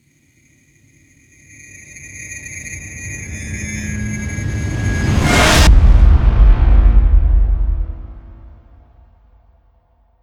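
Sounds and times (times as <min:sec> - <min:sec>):
alarming trailer impact: 0:02.8 - 0:09.4.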